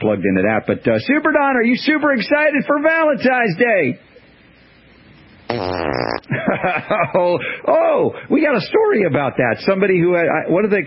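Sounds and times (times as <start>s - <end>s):
speech: 0.0s - 4.1s, 5.5s - 10.8s
loud buzzy fart: 5.5s - 6.3s
laughter: 6.3s - 7.6s.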